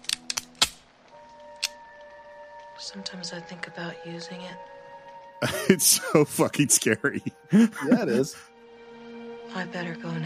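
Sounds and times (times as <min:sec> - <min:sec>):
dry-fire clicks of an unloaded handgun: 0:00.0 - 0:01.8
speech: 0:02.8 - 0:04.7, 0:05.4 - 0:08.5, 0:09.5 - 0:10.2
laughter: 0:05.4 - 0:08.4.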